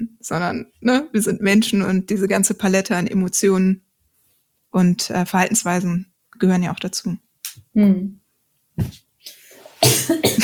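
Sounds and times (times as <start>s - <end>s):
speech: 0.2s - 3.8s, 4.7s - 7.2s, 7.8s - 8.2s
person coughing after choking on something: 9.8s - 10.4s.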